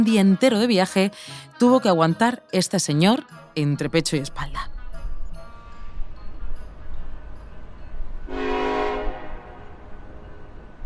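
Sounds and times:
speech: 0.0 - 4.7
train arriving at a station from Madrid: 4.4 - 10.8
train horn blast: 8.3 - 10.1.

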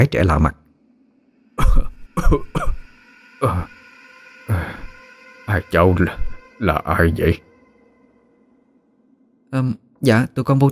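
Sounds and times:
speech: 0.0 - 0.6, 1.6 - 2.8, 3.4 - 3.8, 5.5 - 7.5, 9.5 - 10.7
old man coughing violently: 1.6 - 2.9.

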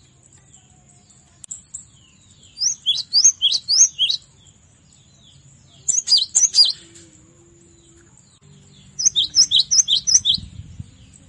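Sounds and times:
cinereous tit song: 2.6 - 4.2, 9.0 - 10.4.

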